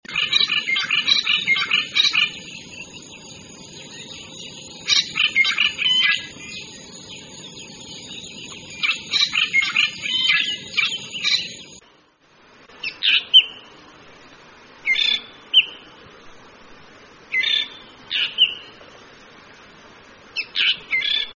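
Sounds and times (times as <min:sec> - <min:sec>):
shining drongo song: 0:00.1 - 0:12.0, 0:12.8 - 0:13.7, 0:14.8 - 0:16.0, 0:17.3 - 0:18.8, 0:20.4 - 0:21.3.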